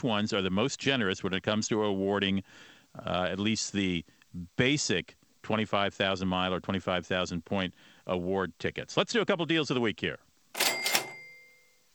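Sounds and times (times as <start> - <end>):
speech: 0.0 - 10.3
cash register cha-ching: 10.6 - 11.8.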